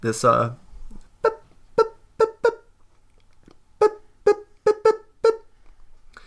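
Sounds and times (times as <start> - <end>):
speech: 0.0 - 0.6
voice imitating high-pitched bird-like honking squawks: 1.2 - 2.7, 3.8 - 5.5.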